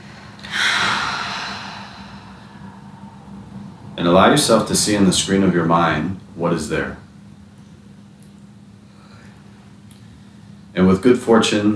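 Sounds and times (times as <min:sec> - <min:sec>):
deep breath in through the nose and out the mouth: 0:00.0 - 0:04.0, 0:08.9 - 0:10.6
speech: 0:04.1 - 0:07.0, 0:10.8 - 0:11.7.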